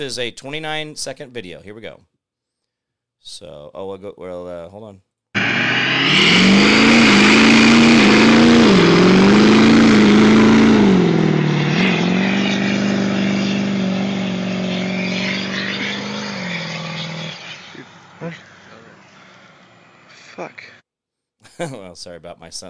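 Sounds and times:
speech: 0.0 - 2.1, 3.2 - 6.5, 21.6 - 22.6
modified diesel truck engine running while vaporizing fuel: 5.4 - 20.2.

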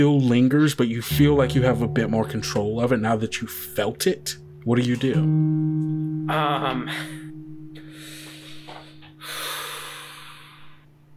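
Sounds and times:
speech: 0.0 - 7.2
male taking deep slow breaths to regain composure: 7.8 - 10.9.

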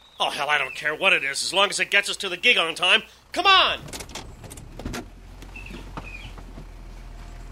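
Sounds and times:
speech: 0.2 - 4.0
tow truck engine idling: 0.5 - 7.4
clanks and rattles: 3.8 - 7.4
short squeaks: 3.8 - 7.4.

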